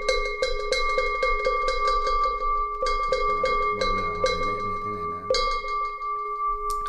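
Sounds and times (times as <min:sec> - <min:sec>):
Buddhist ritual bell struck: 0:00.0 - 0:06.8
person chanting: 0:03.4 - 0:05.6.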